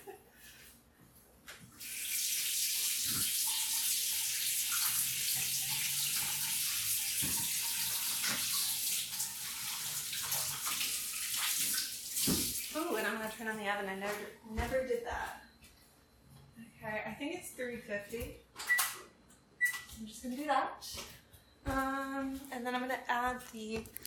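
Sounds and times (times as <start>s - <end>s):
tap water running at a sink: 1.8s - 13.5s
speech: 13.2s - 15.4s, 16.8s - 18.4s, 20.0s - 24.0s.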